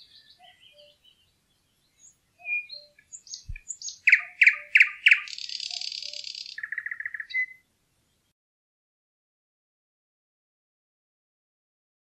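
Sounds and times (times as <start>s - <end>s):
thrush nightingale singing with whistles, clacking notes and trills: 0.0s - 8.3s.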